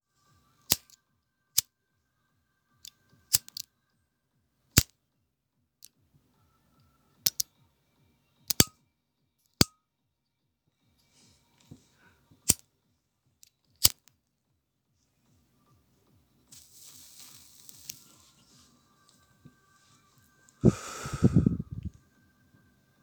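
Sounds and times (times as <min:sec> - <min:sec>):
lighter being lit: 0:00.7 - 0:01.0, 0:03.3 - 0:03.7, 0:08.5 - 0:08.7, 0:13.8 - 0:14.0, 0:16.6 - 0:18.2, 0:20.6 - 0:22.0.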